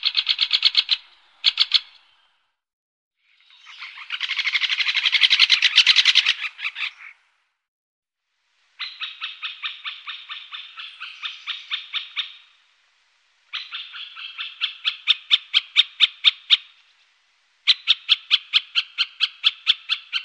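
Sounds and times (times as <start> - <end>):
great spotted woodpecker calling: 0.0 - 2.3, 3.4 - 7.2, 8.8 - 12.6, 13.5 - 16.8, 17.6 - 20.2.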